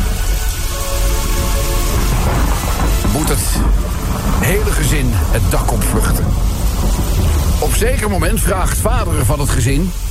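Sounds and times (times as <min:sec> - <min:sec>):
heavy rain pouring down: 0:00.0 - 0:10.1
low rumble of thunder: 0:00.0 - 0:10.1
speech: 0:04.9 - 0:10.1.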